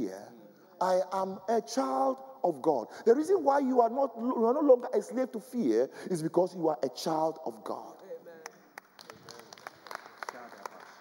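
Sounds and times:
speech: 0.8 - 7.9
church audience clapping during a sermon: 8.4 - 10.9.

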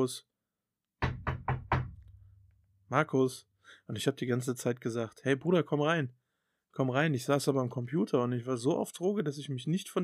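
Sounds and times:
speech: 0.0 - 0.3, 2.9 - 6.2, 6.8 - 10.0
knocking on a wooden door: 1.0 - 2.2.

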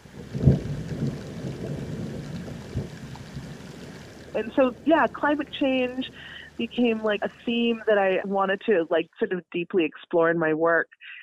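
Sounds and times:
underwater glacier calving rumble: 0.0 - 7.9
speech: 4.4 - 11.2.

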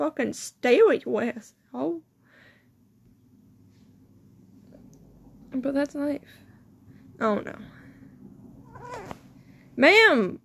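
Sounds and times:
speech: 0.0 - 2.0, 5.5 - 6.4, 7.2 - 7.8, 9.8 - 10.4
low hum: 0.0 - 10.4
cat meowing: 8.6 - 9.2.

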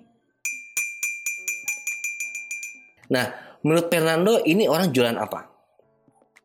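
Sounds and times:
street food vendor's metallic clinking call signal: 0.5 - 2.8
speech: 3.1 - 5.5.

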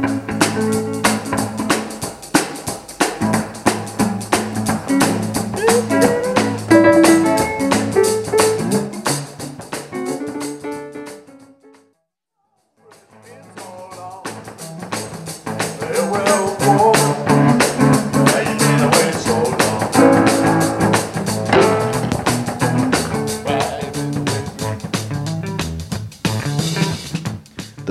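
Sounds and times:
electric guitar in a band jam: 0.0 - 11.8, 14.2 - 27.3
piano in a band jam: 0.0 - 11.9, 15.1 - 27.2
full band jamming with drums: 0.1 - 10.6, 16.0 - 27.2.

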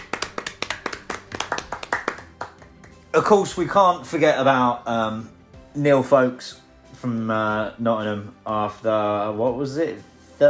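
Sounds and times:
small handful of people applauding: 0.0 - 3.4
speech: 3.2 - 10.4.

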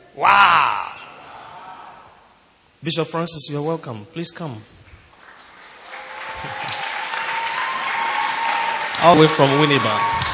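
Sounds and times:
speech: 0.2 - 0.5, 2.8 - 4.8, 9.0 - 10.3
crowd clapping: 4.8 - 10.3.

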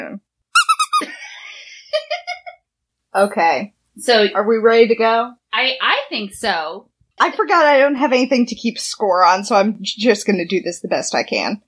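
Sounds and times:
squeaky toy being squeezed: 0.5 - 1.1
speech: 3.1 - 11.6.

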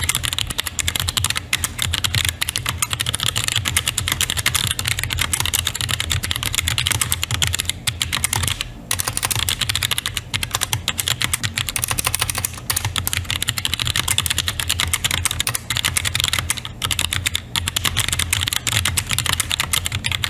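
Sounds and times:
low soft hum: 0.0 - 20.2
rapid typing on a keyboard with springy switches: 0.0 - 20.2.

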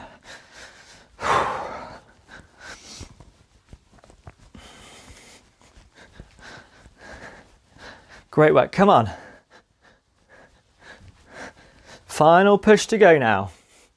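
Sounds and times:
deep breathing during a timed exercise workout: 0.0 - 3.5, 4.4 - 8.4, 9.0 - 12.1
speech: 8.4 - 9.2, 12.2 - 13.6.

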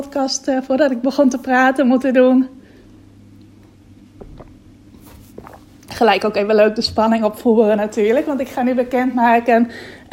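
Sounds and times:
speech: 0.0 - 2.6, 6.0 - 10.1
low steady hum: 0.0 - 10.1
person taking a quick sip of water: 4.2 - 5.9
soft wet mouth and swallowing sounds: 4.2 - 6.0.

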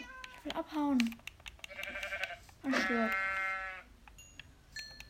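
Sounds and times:
speech: 0.7 - 1.2, 2.9 - 3.2
sheep bleating in a video game: 1.7 - 3.9.

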